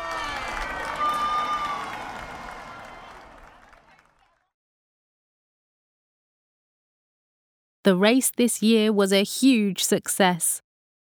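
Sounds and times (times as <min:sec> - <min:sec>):
crowd cheering at the finish of a village running race: 0:00.0 - 0:04.5
speech: 0:07.8 - 0:10.6.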